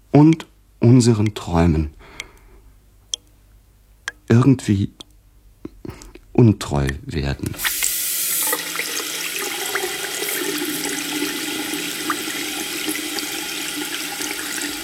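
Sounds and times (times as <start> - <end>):
speech: 0.2 - 2.0, 4.3 - 5.0, 6.4 - 7.8
water running from a tap: 7.6 - 14.8.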